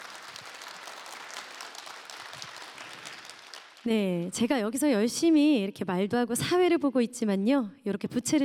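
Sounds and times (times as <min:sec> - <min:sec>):
audience applause after a musical performance: 0:00.0 - 0:03.9
speech: 0:03.8 - 0:08.4.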